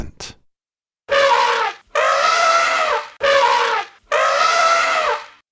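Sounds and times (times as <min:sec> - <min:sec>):
elephant sounds: 0:01.1 - 0:05.4.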